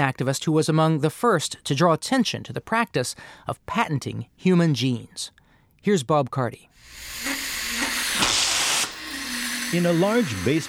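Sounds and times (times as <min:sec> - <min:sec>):
speech: 0:00.0 - 0:07.3, 0:09.7 - 0:10.6
white vapor hissing from hoses filling steel tanks with liquid nitrogen: 0:06.8 - 0:10.6.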